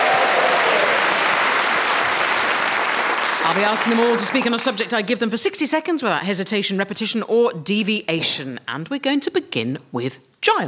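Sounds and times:
live audience clapping and cheering: 0:00.0 - 0:05.0
speech: 0:03.5 - 0:10.6.

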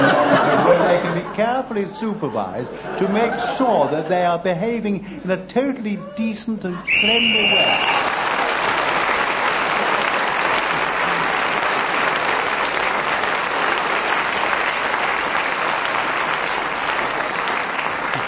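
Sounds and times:
laughter: 0:00.0 - 0:04.5
speech: 0:01.3 - 0:08.2
loud sustained applause from a large audience: 0:06.9 - 0:18.2.

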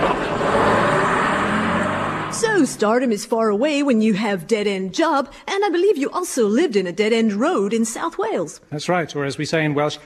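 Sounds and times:
bus engine rumbling and revving as it pulls away: 0:00.0 - 0:03.3
speech: 0:02.6 - 0:10.0.

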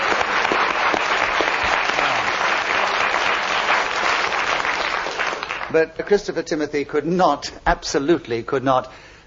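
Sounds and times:
studio audience applause: 0:00.0 - 0:05.8
speech: 0:05.7 - 0:09.1.

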